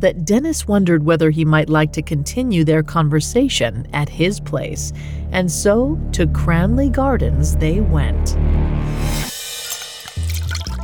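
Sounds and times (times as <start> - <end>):
speech: 0.0 - 9.3
whiskey poured into a glass in a flat in Cranley Gardens: 9.3 - 10.8.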